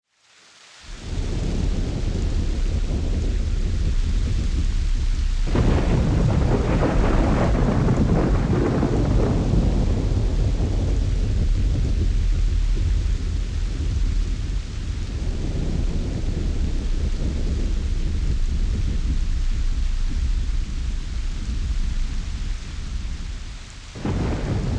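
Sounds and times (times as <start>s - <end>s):
rainy thunderstorm ambience: 0.3s - 24.7s.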